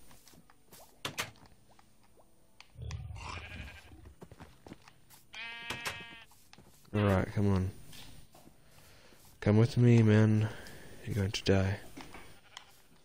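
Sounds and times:
sheep bleating in a video game: 2.8s - 4.4s, 5.3s - 6.4s, 12.1s - 13.0s
speech: 6.9s - 7.8s, 9.4s - 11.9s.

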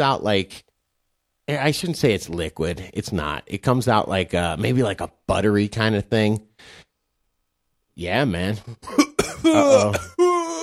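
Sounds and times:
speech: 0.0s - 0.6s, 1.5s - 6.8s, 8.0s - 10.2s
person coughing after a vape pen hit: 8.8s - 10.6s.

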